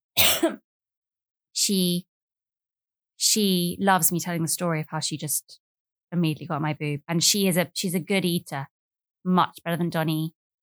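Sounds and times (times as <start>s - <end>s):
woman clearing her throat: 0.2s - 0.6s
speech: 0.4s - 0.6s, 1.6s - 2.1s, 3.2s - 10.4s.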